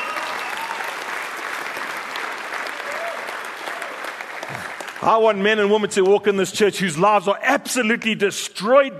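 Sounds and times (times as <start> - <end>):
audience applause: 0.0 - 6.1
speech: 5.0 - 8.9.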